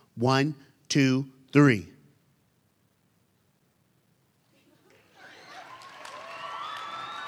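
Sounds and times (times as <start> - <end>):
speech: 0.2 - 1.9
crowd in an auditorium yelling together: 5.2 - 7.2.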